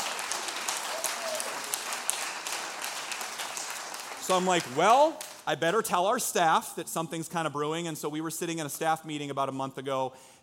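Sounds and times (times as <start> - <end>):
audience clapping during sermon: 0.0 - 5.8
speech: 4.3 - 10.4.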